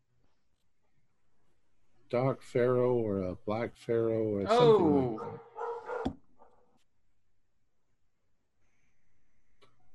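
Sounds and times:
speech: 2.1s - 5.5s
dogs barking sharply: 5.2s - 6.6s.

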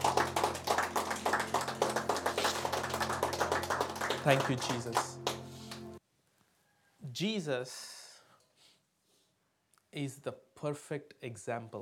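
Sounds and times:
crowd clapping hands: 0.0s - 6.0s
speech: 4.2s - 5.2s, 7.2s - 7.9s, 10.0s - 11.8s.

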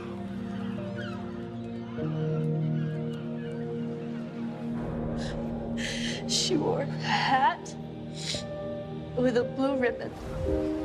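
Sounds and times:
seagulls calling: 0.0s - 7.9s
speech: 6.5s - 7.7s, 9.2s - 10.8s.

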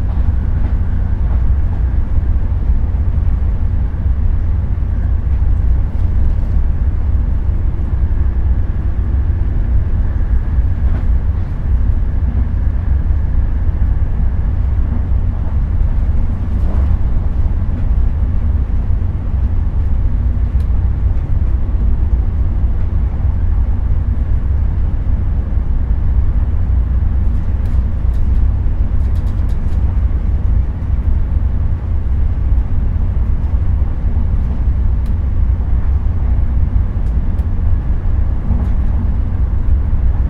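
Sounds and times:
low rumble inside a moving train carriage: 0.0s - 40.2s
light ticks: 37.0s - 37.5s.

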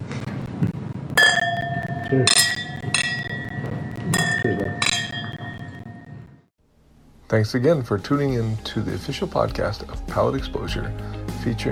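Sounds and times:
wine glasses clinking together in a toast: 1.2s - 6.1s
speech: 2.1s - 2.6s, 7.3s - 11.6s.

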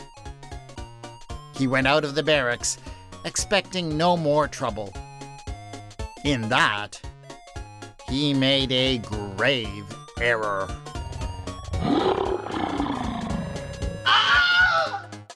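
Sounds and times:
speech: 1.6s - 5.0s, 6.2s - 7.1s, 8.1s - 10.8s
lion roaring with snarling growls in an attack: 10.9s - 14.8s.

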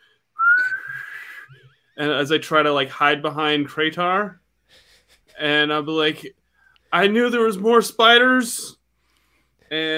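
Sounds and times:
person whistling a tune: 0.4s - 1.8s
speech: 2.0s - 4.4s, 5.4s - 8.8s, 9.7s - 9.9s.

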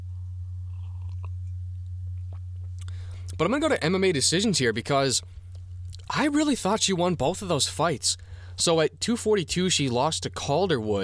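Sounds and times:
steady low electrical hum: 0.0s - 11.0s
person slurping and sipping coffee: 0.7s - 1.4s
wet mouth clicks: 0.7s - 1.4s
person gulping: 0.7s - 1.6s
speech: 3.4s - 5.4s, 6.1s - 11.0s.

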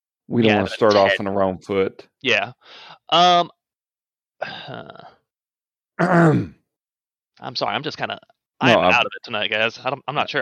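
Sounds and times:
speech: 0.3s - 3.6s, 4.4s - 5.1s, 6.0s - 6.6s, 7.4s - 10.4s
person clearing throat: 6.0s - 6.6s.

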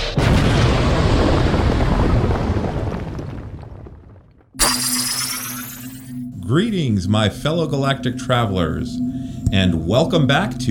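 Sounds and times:
loud rumbling explosion: 0.2s - 3.8s
brighter steady tonal sound: 4.6s - 6.2s
speech: 6.5s - 10.6s.

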